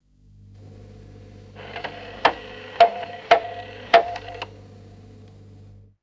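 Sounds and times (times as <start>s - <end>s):
domestic clock striking: 0.7s - 4.6s.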